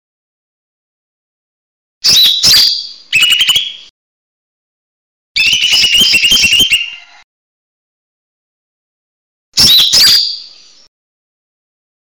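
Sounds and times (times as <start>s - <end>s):
leafbird song: 2.0s - 3.9s, 5.4s - 7.2s, 9.6s - 10.9s.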